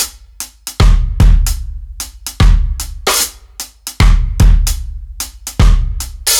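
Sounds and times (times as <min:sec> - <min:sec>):
reggae drum kit rimshots: 0:00.0 - 0:06.3.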